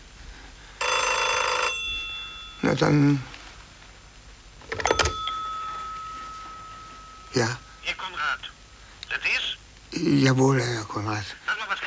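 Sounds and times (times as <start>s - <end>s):
faint hum: 0.0s - 11.8s
telephone bell ringing: 0.8s - 3.3s, 4.7s - 8.7s
speech: 2.7s - 3.3s, 7.4s - 8.0s, 10.0s - 11.4s.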